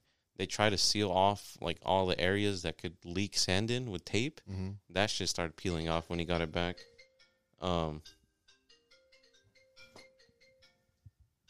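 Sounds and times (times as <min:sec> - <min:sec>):
speech: 0:00.4 - 0:06.9, 0:07.6 - 0:08.2
mobile phone ringtone playing a short electronic melody: 0:06.2 - 0:11.0.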